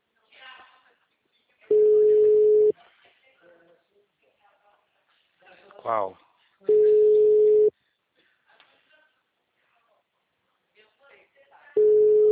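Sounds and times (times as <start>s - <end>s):
telephone ringback tone on an outgoing call: 1.7s - 2.7s, 6.7s - 7.7s, 11.8s - 12.3s
speech: 5.8s - 6.2s.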